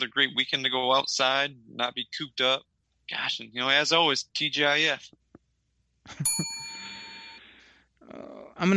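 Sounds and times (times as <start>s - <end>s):
speech: 0.0s - 5.2s, 6.1s - 6.5s, 8.1s - 8.7s
bright metallic bell ding: 6.2s - 7.4s.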